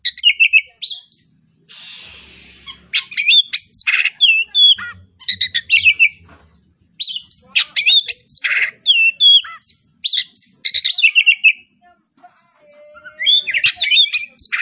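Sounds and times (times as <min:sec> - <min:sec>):
Kacer Tretes type oriental magpie-robin singing: 0:00.0 - 0:01.4, 0:02.4 - 0:11.8, 0:12.7 - 0:14.6
faint low thumps: 0:04.6 - 0:07.1.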